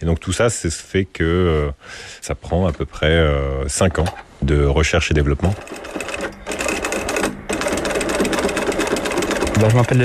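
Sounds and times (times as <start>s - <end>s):
speech: 0.0s - 6.1s, 9.6s - 10.0s
sewing machine stitching a thick strap with a quick-release clip using heavy thread: 5.4s - 10.0s.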